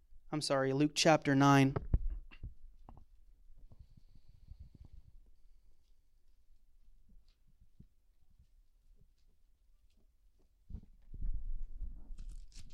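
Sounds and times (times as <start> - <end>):
speech: 0.3 - 1.9
Bible pages being turned by several people: 12.1 - 12.7.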